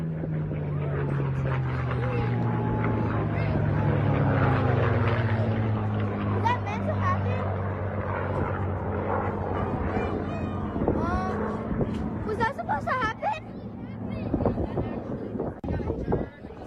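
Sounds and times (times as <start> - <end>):
indistinct crowd voices murmuring at an air show: 0.0 - 16.6
propeller warplanes droning overhead at an air show: 0.0 - 16.6.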